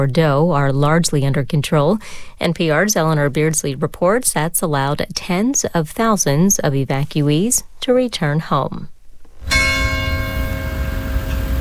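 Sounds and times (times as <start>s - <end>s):
speech: 0.0s - 8.9s
church bell ringing in a village in southwest France: 9.4s - 11.5s.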